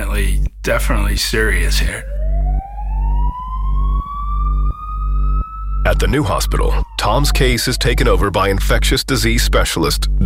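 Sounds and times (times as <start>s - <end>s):
speech: 0.2s - 2.2s, 6.0s - 10.2s
ambulance deep engine rumble: 1.6s - 10.2s
ambulance siren wailing: 1.8s - 8.8s.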